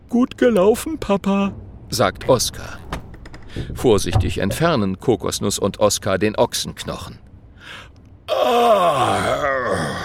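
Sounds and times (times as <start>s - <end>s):
speech: 0.2s - 2.8s, 3.6s - 9.3s
man groaning after a tooth is pulled: 8.3s - 10.0s.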